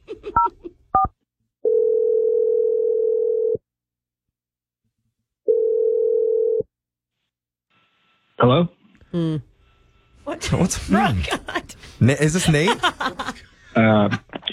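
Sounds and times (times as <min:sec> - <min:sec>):
long steady low telephone ringing tones: 0:01.6 - 0:03.6, 0:05.5 - 0:06.7
speech: 0:08.5 - 0:09.5, 0:10.4 - 0:14.3
laughter: 0:10.8 - 0:14.5.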